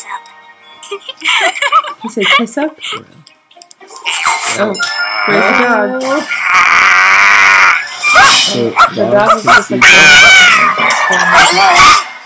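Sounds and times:
busy indoor background: 0.0s - 12.2s
laughter: 0.8s - 3.1s
speech: 0.9s - 3.3s, 4.5s - 6.9s, 8.3s - 12.0s
dog barking and yipping: 8.0s - 12.1s.

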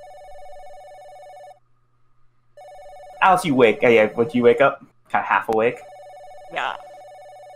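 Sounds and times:
telephone ringing with an electronic trill: 0.0s - 1.6s, 2.6s - 4.7s, 5.7s - 7.5s
faint low hum: 0.0s - 7.5s
speech: 3.2s - 5.9s, 6.5s - 6.9s.

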